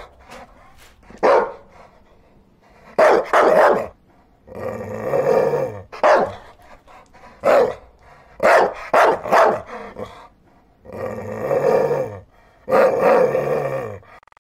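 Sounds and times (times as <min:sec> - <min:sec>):
stray dog growling at night in a garden by a riverbank: 0:00.0 - 0:14.2
stray dog barking at night in a garden by a riverbank: 0:01.1 - 0:01.8, 0:02.9 - 0:04.0, 0:05.9 - 0:06.5, 0:07.4 - 0:10.0.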